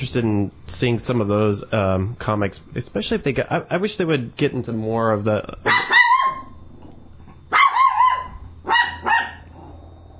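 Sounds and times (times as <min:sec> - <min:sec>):
speech: 0:00.0 - 0:06.0
dog barking at the mail carrier: 0:05.6 - 0:06.6, 0:07.5 - 0:09.6.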